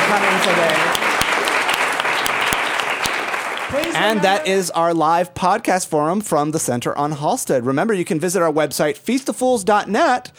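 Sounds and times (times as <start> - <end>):
sharp individual claps: 0.0 - 4.3
audience applause at a live forum: 0.0 - 4.6
speech: 0.1 - 1.0, 3.7 - 10.3.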